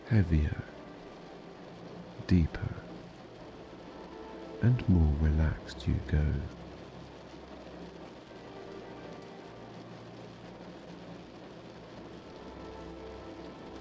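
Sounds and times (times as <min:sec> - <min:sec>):
rain tapping on a window: 0:00.0 - 0:13.7
speech: 0:00.1 - 0:00.7, 0:02.3 - 0:02.8, 0:04.6 - 0:06.6.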